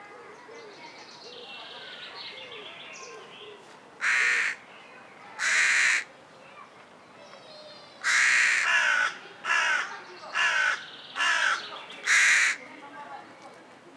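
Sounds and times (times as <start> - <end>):
Corvus corone carrion crow cawing: 4.0 - 4.6, 5.4 - 6.1, 8.0 - 12.7.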